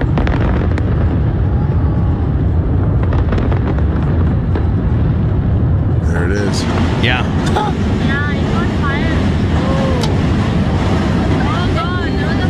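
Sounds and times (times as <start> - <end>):
fireworks exploding in a show launched from the Brooklyn Bridge in New York City: 0.0 - 12.4
speech: 6.5 - 7.9.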